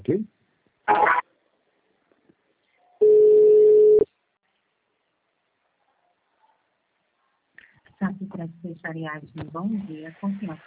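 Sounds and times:
speech: 0:00.0 - 0:00.3, 0:00.9 - 0:01.2, 0:08.4 - 0:10.6
telephone tone while a call is being transferred: 0:03.0 - 0:04.0.

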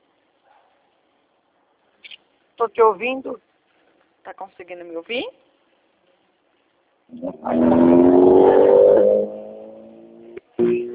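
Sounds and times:
speech: 0:02.6 - 0:03.5, 0:04.2 - 0:05.5, 0:07.1 - 0:07.7
car engine humming while accelerating during a phone call: 0:07.1 - 0:10.9.

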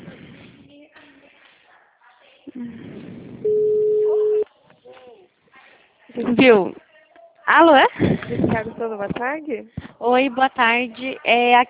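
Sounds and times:
speech: 0:02.5 - 0:03.0, 0:06.2 - 0:06.8, 0:07.5 - 0:11.6
ringback tone on an outgoing phone call: 0:03.5 - 0:04.4.

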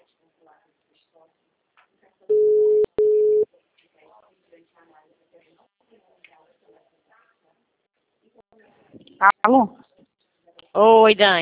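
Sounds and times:
telephone tone after a dropped call: 0:02.3 - 0:03.4
speech: 0:08.3 - 0:09.8, 0:10.8 - 0:11.4.

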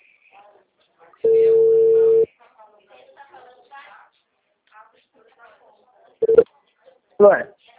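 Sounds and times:
telephone ringback tone of an outgoing call to bank clients: 0:01.2 - 0:02.3, 0:06.2 - 0:06.4.

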